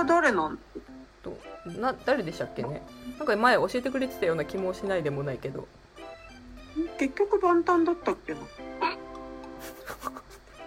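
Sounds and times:
speech: 0.0 - 5.8, 6.8 - 8.8
hiccup: 8.8 - 9.1.

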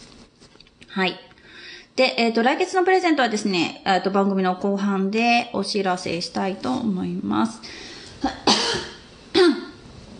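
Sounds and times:
speech: 1.0 - 1.3, 2.0 - 8.4
person coughing: 8.2 - 9.8.

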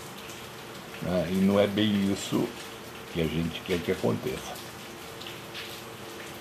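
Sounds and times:
steady rain pattering on a surface: 0.0 - 6.3
speech: 1.0 - 4.6.

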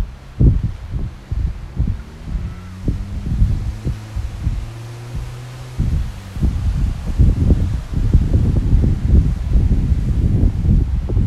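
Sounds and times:
gusty wind buffeting the microphone: 0.0 - 11.2
passing vehicle engine hum: 0.0 - 11.2
surf hissing: 0.0 - 11.2
traffic driving by: 0.0 - 11.2.

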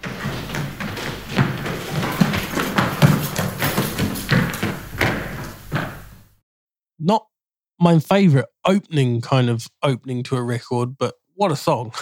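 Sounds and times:
rhythmic stomping in a percussion performance: 0.0 - 6.3
speech: 7.0 - 12.0.

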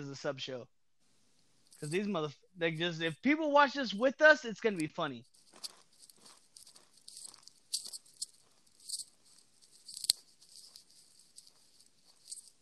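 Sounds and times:
speech: 0.0 - 0.8, 1.8 - 5.8
crisp chewing with crunchy bites and wet clicks: 5.3 - 12.5.

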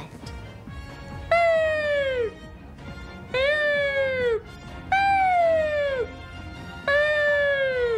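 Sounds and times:
voice imitating an ambulance siren: 1.3 - 2.4, 3.3 - 6.2, 6.8 - 7.9.

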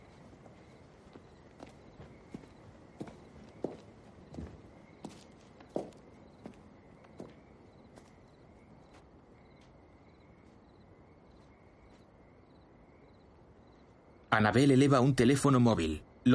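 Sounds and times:
footsteps walking outdoors toward a woodshed: 0.0 - 14.2
hiss: 0.0 - 16.3
speech: 14.4 - 16.3.

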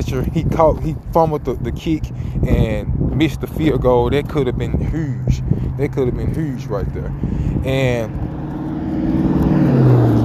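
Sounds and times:
car engine rumbling as the car approaches: 0.0 - 10.2
speech: 0.1 - 8.3, 9.0 - 9.5.

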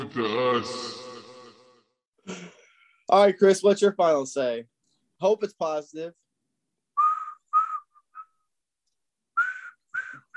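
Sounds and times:
speech: 0.1 - 1.0, 3.1 - 6.2
person whistling a short simple tune: 7.0 - 8.4, 9.4 - 10.3.

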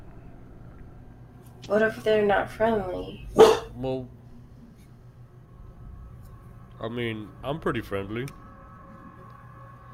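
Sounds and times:
speech: 1.6 - 4.2, 6.8 - 8.4
person imitating a barking dog: 3.4 - 3.7.

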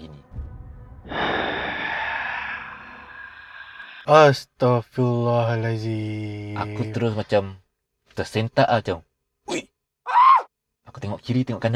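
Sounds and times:
low rumble: 0.2 - 4.0
voice imitating a breathy exhale into the microphone: 1.1 - 4.1
speech: 4.1 - 7.6, 8.2 - 9.7, 10.9 - 11.7.

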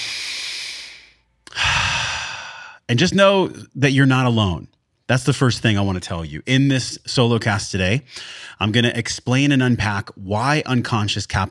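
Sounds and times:
deep breath: 0.0 - 2.9, 8.1 - 8.6
speech: 2.9 - 11.4.

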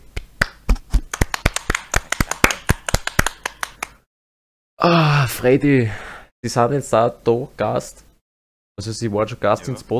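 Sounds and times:
small group applauding with brisk hand clapping: 0.1 - 4.0
speech: 4.8 - 8.1, 8.8 - 9.9.

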